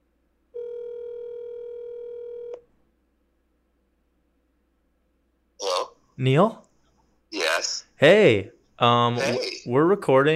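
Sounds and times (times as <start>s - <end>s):
telephone dial tone while placing a call: 0.6s - 2.6s
speech: 6.2s - 6.6s, 8.0s - 10.3s.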